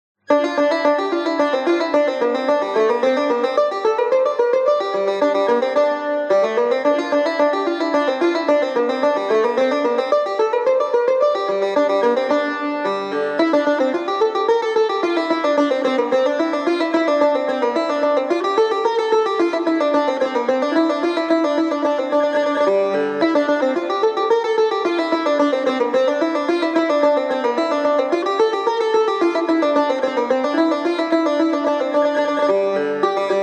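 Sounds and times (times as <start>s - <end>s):
tar playing in nava mode: 0.3s - 33.4s.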